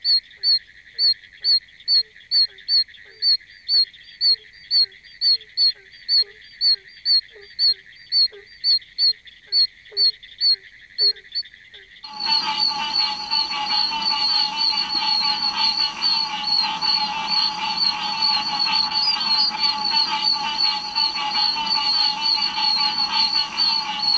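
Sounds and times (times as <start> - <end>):
Oak toad Bufo quercicus giving sharp high chirps: 12.1 - 24.1.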